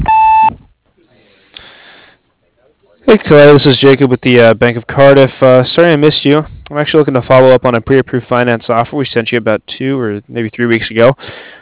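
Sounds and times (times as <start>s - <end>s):
answering machine beep: 0.0s - 0.6s
speech: 3.2s - 11.6s.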